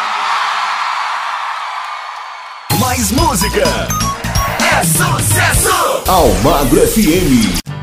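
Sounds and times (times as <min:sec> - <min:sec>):
large live crowd in Salvador shouting and cheering: 0:00.0 - 0:07.6
speech: 0:03.0 - 0:04.2, 0:04.8 - 0:07.7.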